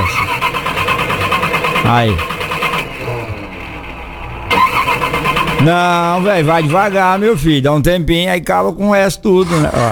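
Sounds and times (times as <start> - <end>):
cold alcohol-fuelled car engine cranking without catching: 0.0 - 7.8
speech: 1.8 - 2.4, 5.6 - 9.9.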